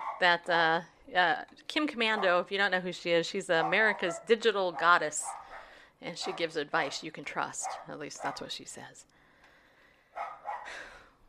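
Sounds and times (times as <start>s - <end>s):
dog barking: 0.0s - 0.3s, 2.1s - 2.4s, 3.6s - 7.0s, 7.6s - 8.5s, 10.2s - 10.7s
speech: 0.2s - 5.4s, 6.0s - 9.2s.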